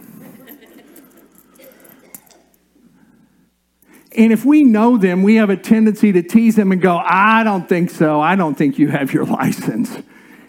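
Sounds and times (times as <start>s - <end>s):
keys jangling in a hand: 0.3s - 2.6s
speech: 4.2s - 10.2s.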